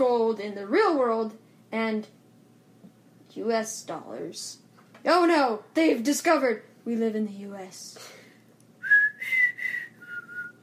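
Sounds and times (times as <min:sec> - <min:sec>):
speech: 0:00.0 - 0:02.2, 0:03.4 - 0:08.2
person whistling with a dry mouth: 0:08.8 - 0:10.6.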